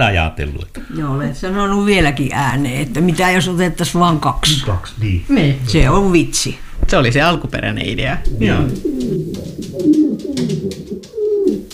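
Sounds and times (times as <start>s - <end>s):
speech: 0.0s - 10.9s
several pigeons cooing: 8.2s - 11.7s
soft fluttering and rustling: 8.2s - 11.7s.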